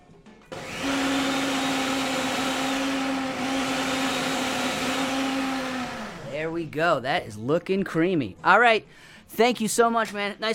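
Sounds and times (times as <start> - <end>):
blender blending raw garlic and onions: 0.5 - 6.5
speech: 6.4 - 10.5.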